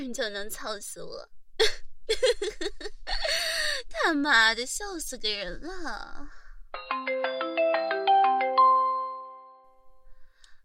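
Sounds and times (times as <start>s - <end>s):
speech: 0.0s - 7.9s
phone ringtone for an incoming call: 6.8s - 9.8s.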